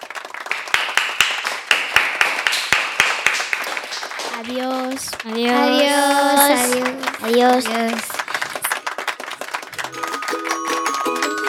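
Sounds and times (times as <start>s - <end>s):
scattered applause at the close of a debate: 0.0s - 11.4s
speech: 4.4s - 8.2s.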